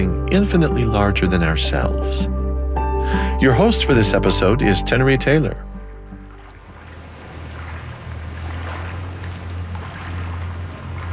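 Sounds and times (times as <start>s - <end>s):
speech: 0.0s - 2.4s, 3.0s - 5.7s
low constant rumble: 0.0s - 11.1s
river water lapping and sloshing outdoors: 4.6s - 11.1s.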